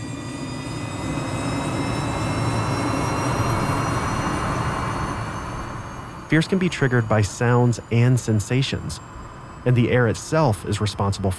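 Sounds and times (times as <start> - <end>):
airplane engines roaring at full power during takeoff: 0.0 - 11.3
speech: 6.3 - 11.3.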